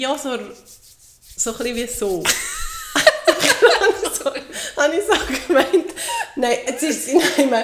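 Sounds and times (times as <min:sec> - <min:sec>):
speech: 0:00.0 - 0:00.8, 0:01.4 - 0:02.6, 0:04.2 - 0:07.6
imitated cat scratching rubbing on wood: 0:00.1 - 0:03.2
laughter: 0:02.2 - 0:07.6.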